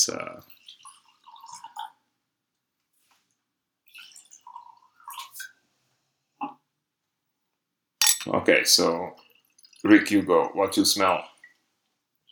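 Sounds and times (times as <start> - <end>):
speech: 0.0 - 0.6, 8.3 - 9.2, 9.8 - 11.3
drips: 0.3 - 2.0, 3.8 - 5.6, 8.6 - 11.6
liquid pouring with splashing and gurgling: 0.3 - 2.0, 3.9 - 5.6, 8.3 - 11.6
sharp clink or splash: 8.0 - 8.3.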